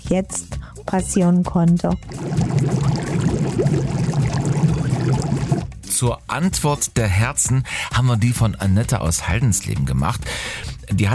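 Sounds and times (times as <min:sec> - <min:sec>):
speech: 0:00.1 - 0:02.8, 0:03.6 - 0:04.2, 0:06.0 - 0:11.1
jacuzzi water bubbling and churning: 0:02.0 - 0:05.7.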